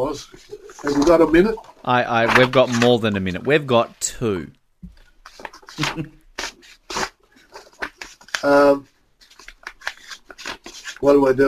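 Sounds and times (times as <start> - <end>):
toilet paper rustling and crinkling as it is folded: 0.0 - 3.4, 5.2 - 8.5, 9.2 - 11.0
speech: 0.0 - 4.6, 5.8 - 6.2, 8.4 - 8.9, 11.0 - 11.4.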